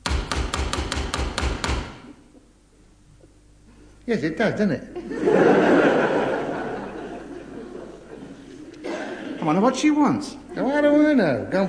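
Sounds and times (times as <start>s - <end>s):
sharp solid knocking on a door: 0.0s - 2.0s
speech: 4.1s - 5.7s, 9.5s - 11.6s
laughter: 5.0s - 9.6s.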